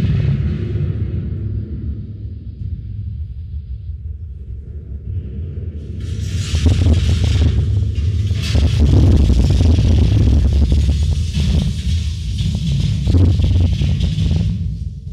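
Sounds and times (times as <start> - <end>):
low continuous rumble: 0.0 - 15.1
crackling debris-like bursts: 6.2 - 14.6
simulated explosion echoing through underground corridors: 6.2 - 14.6.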